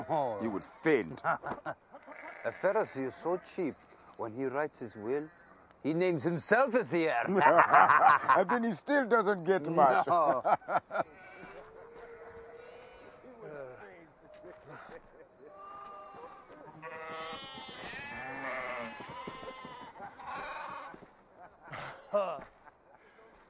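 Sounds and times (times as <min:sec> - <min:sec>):
speech: 0:00.0 - 0:11.2
laughter: 0:01.0 - 0:01.9, 0:07.2 - 0:08.8, 0:09.7 - 0:11.7, 0:13.3 - 0:16.9, 0:19.1 - 0:23.4
sheep bleating: 0:02.0 - 0:03.5, 0:11.1 - 0:13.3, 0:15.5 - 0:21.0.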